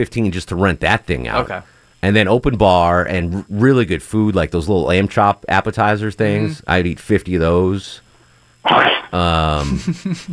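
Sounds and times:
speech: 0:00.0 - 0:08.0, 0:08.6 - 0:10.3
person murmuring: 0:01.2 - 0:01.6, 0:06.3 - 0:06.6, 0:08.7 - 0:10.3
dog sneezing: 0:08.6 - 0:09.2
person laughing: 0:08.7 - 0:10.3.

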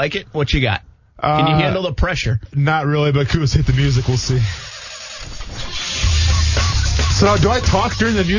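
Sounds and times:
speech: 0:00.0 - 0:04.6, 0:07.2 - 0:08.3
engine starting: 0:03.6 - 0:08.3.

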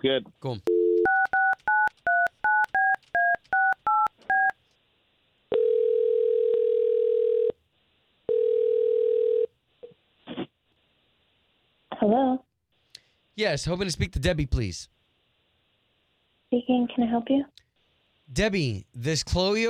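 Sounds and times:
speech: 0:00.0 - 0:00.7, 0:13.4 - 0:15.0, 0:16.7 - 0:17.6, 0:18.3 - 0:19.6
telephone ringing tones of an outgoing call: 0:00.7 - 0:04.6, 0:05.5 - 0:07.6, 0:08.3 - 0:09.5
touch-tone beeps of a phone dialing an outgoing call: 0:00.7 - 0:04.6.

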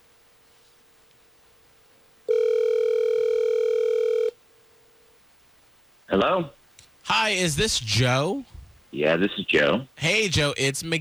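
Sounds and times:
outgoing phone call ringback tone: 0:02.3 - 0:04.3
speech: 0:06.2 - 0:11.0.

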